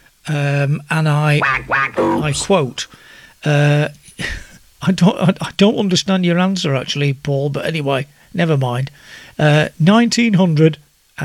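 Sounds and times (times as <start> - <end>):
speech: 0.3 - 11.2
person imitating duck quacking: 1.4 - 3.0.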